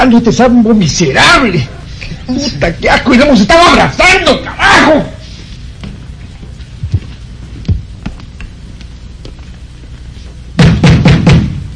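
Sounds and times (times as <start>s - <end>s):
speech: 0.0s - 5.1s
heavy pounding on a door: 10.6s - 11.7s.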